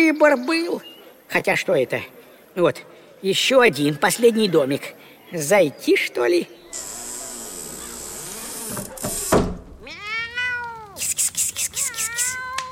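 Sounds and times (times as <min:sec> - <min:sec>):
speech: 0:00.1 - 0:06.9
steady buzzing scraping noise: 0:06.7 - 0:09.8
cat meowing: 0:09.8 - 0:11.0, 0:11.7 - 0:12.7.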